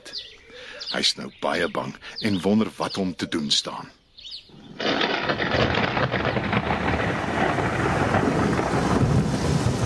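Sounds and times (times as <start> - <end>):
speech: 1.0 - 4.0
loud crack of thunder: 4.7 - 9.8
heavy downpour of rain: 4.8 - 9.8.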